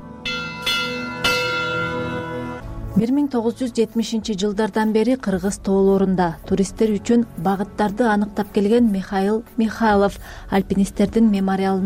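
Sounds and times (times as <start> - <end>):
memorial bell tolling in honour of climbers lost in the Kyrgyz mountains: 0.0 - 2.6
speech: 3.0 - 11.8.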